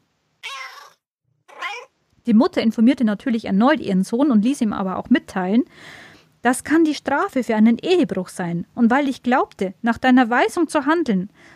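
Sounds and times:
kitten meowing: 0.4s - 1.9s
speech: 2.3s - 11.5s.

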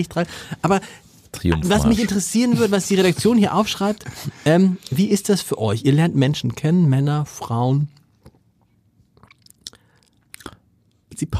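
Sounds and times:
speech: 0.0s - 8.0s, 11.2s - 11.3s
lip smacks: 9.2s - 10.6s.

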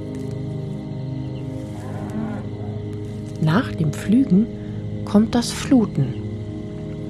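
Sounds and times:
buffalo with large sickle-shaped horns lowing while grazing in a field: 0.1s - 3.4s
speech: 3.4s - 6.2s.

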